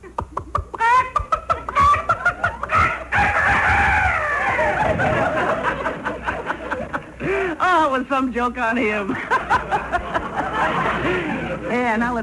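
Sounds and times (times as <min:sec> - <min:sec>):
man on the telephone imitating a rooster crowing: 0:00.8 - 0:04.8
laughter: 0:00.8 - 0:07.6, 0:09.1 - 0:12.0
speech: 0:08.0 - 0:09.8, 0:10.6 - 0:12.2.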